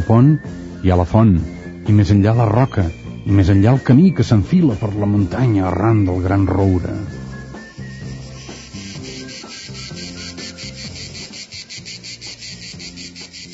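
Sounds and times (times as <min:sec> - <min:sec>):
speech: 0:00.1 - 0:07.2
crickets chirping: 0:04.9 - 0:13.5.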